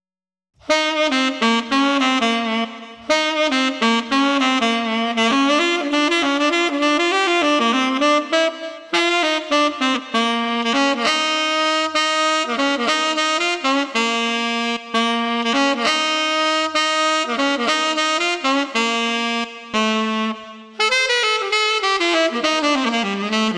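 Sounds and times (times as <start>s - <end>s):
tenor saxophone playing in the street: 0.6s - 23.5s.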